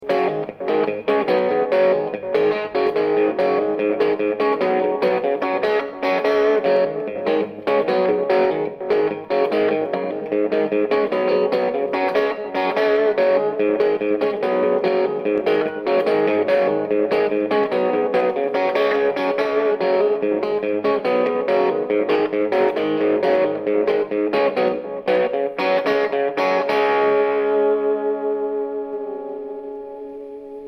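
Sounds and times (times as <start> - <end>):
riff with modulation: 0.0 - 30.6.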